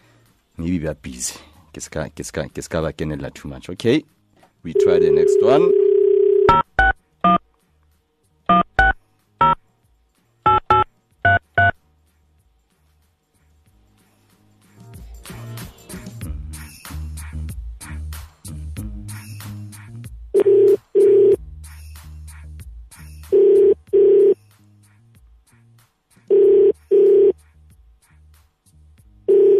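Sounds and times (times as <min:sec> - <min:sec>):
speech: 0:00.6 - 0:05.8
buzzy ringing tones on a hissy phone line: 0:04.7 - 0:07.4, 0:10.5 - 0:11.8, 0:20.4 - 0:21.4, 0:23.3 - 0:24.4, 0:26.3 - 0:27.4, 0:29.3 - 0:29.5
touch-tone keypad beeps: 0:06.4 - 0:07.4, 0:08.5 - 0:09.6, 0:10.5 - 0:11.8.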